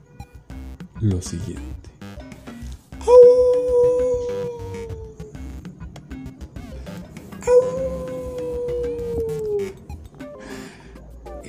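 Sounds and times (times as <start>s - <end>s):
speech: 1.0s - 1.9s
faint low rumble: 1.7s - 11.4s
wolf howling: 3.0s - 5.7s, 7.4s - 9.8s.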